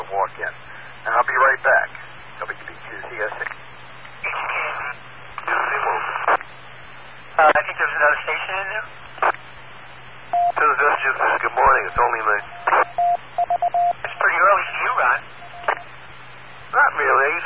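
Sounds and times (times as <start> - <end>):
low constant hum: 0.0 - 17.4
telephone-filtered dialing tones: 10.4 - 10.6, 11.6 - 14.2, 15.4 - 15.8.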